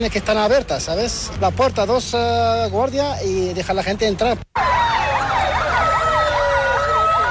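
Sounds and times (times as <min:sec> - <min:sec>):
speech: 0:00.0 - 0:04.8
low traffic rumble: 0:00.0 - 0:07.3
police sirens wailing: 0:04.5 - 0:07.3.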